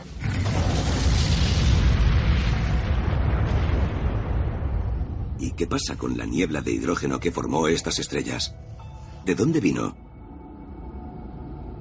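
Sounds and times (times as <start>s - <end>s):
deep rumbling supernova explosion boom: 0.0s - 7.2s
speech: 5.4s - 8.6s, 9.2s - 10.0s.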